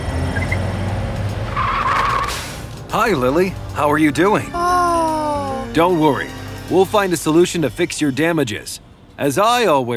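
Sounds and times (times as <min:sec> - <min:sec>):
car engine and road noise driving through streets: 0:00.0 - 0:09.9
tire squeal: 0:00.3 - 0:00.7, 0:01.4 - 0:02.7
speech: 0:02.9 - 0:04.6, 0:05.8 - 0:09.9.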